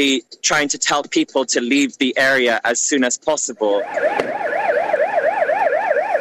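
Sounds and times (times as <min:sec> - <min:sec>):
speech: 0:00.0 - 0:04.6
ambulance and fire engine sirens wailing in Seoul streets: 0:03.7 - 0:06.2.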